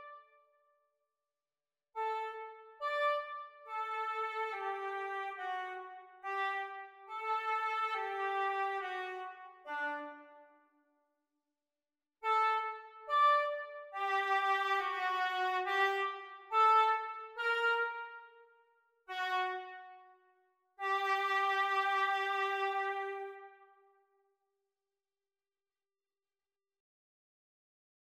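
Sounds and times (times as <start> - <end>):
oboe duets practice: 2.0 - 10.4, 12.3 - 18.2, 20.8 - 23.5.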